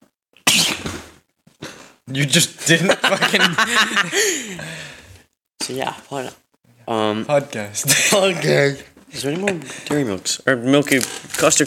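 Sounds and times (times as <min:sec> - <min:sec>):
loud sneeze: 0:00.4 - 0:01.9
speech: 0:02.1 - 0:05.0, 0:05.7 - 0:11.6
laughter: 0:02.7 - 0:04.6.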